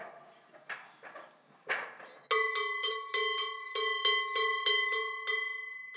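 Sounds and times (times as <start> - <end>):
Savoie herd cowbell ringing: 2.3 - 5.9.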